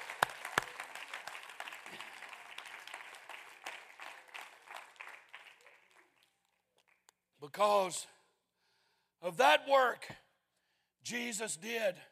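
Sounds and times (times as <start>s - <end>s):
crowd clapping hands in applause: 0.0s - 7.1s
speech: 7.5s - 8.2s, 9.2s - 10.2s, 11.0s - 12.1s.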